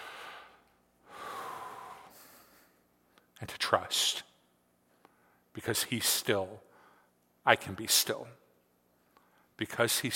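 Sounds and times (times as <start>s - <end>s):
church congregation drawing a collective deep breath in: 0.0s - 3.3s, 4.9s - 5.5s, 6.7s - 7.2s, 9.0s - 9.6s
speech: 3.4s - 4.3s, 5.6s - 6.7s, 7.4s - 8.4s, 9.6s - 10.1s.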